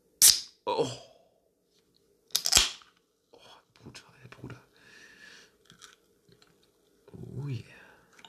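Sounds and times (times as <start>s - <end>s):
can of cola popping open: 0.2s - 0.6s, 2.3s - 2.9s
speech: 0.7s - 1.1s.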